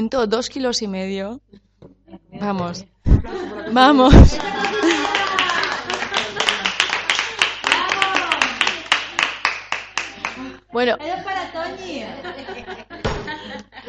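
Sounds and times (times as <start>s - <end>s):
speech: 0.0s - 1.6s, 2.4s - 5.0s, 10.8s - 12.5s
laughter: 3.2s - 9.4s, 10.0s - 13.8s
group clapping hands in lively applause: 4.1s - 10.5s.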